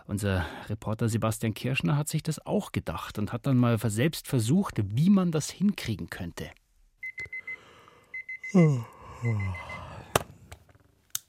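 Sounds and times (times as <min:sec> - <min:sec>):
speech: 0:00.1 - 0:06.6, 0:08.5 - 0:09.7
digital alarm clock beeping: 0:07.0 - 0:08.6, 0:09.4 - 0:09.8
person groaning drowsily: 0:08.5 - 0:10.2.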